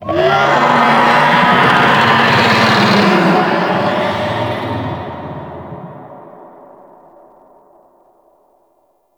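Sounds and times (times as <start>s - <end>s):
infested golem minion swarm vocals: 0.0s - 6.4s.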